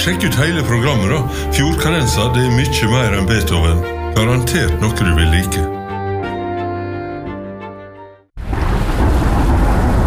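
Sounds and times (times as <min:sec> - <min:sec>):
speech: 0:00.0 - 0:05.8
tonal music: 0:00.0 - 0:08.2
deep rumble of thunder: 0:08.4 - 0:10.0
steady heavy rain: 0:08.4 - 0:10.0.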